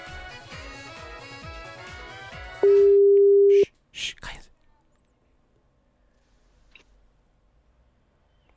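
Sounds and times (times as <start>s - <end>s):
telephone tone as a call is placed: 2.6s - 3.6s.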